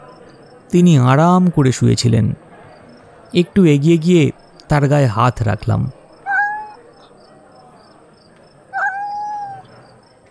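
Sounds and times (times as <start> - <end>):
speech: 0.7 - 2.4, 3.3 - 6.0
large black cat meowing: 6.2 - 6.8, 8.7 - 9.7.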